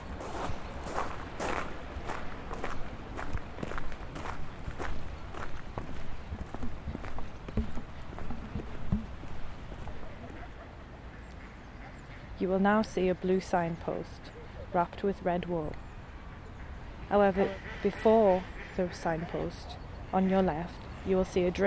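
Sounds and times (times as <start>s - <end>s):
soft footsteps walking straight ahead: 0.0s - 10.1s
continuous noise: 0.0s - 21.6s
speech: 12.4s - 15.8s, 17.1s - 21.6s.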